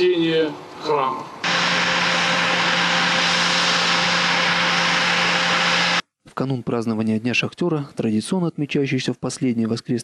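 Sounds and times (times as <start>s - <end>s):
speech: 0.0s - 1.4s, 6.4s - 10.0s
airplane engines roaring while landing at Novokuznetsk airport in Kuzbass Russia: 1.3s - 6.0s.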